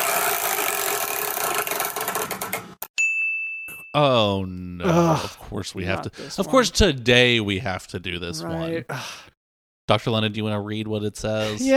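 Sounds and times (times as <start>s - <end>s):
big chore wheel spinning with rapid clicks: 0.0s - 2.6s
bright ringing ding: 3.0s - 4.0s
speech: 3.9s - 9.3s, 9.9s - 11.7s.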